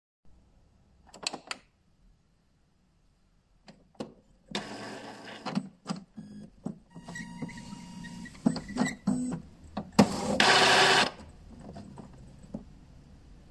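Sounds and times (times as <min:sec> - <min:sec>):
inkjet printer switching on: 0:04.6 - 0:05.6, 0:07.0 - 0:09.4, 0:10.0 - 0:11.2.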